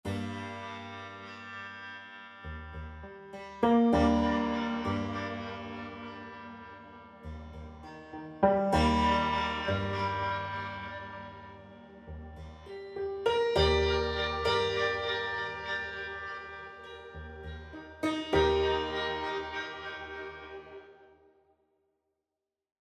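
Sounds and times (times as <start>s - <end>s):
slow-motion echo arpeggio: 3.6s - 21.1s.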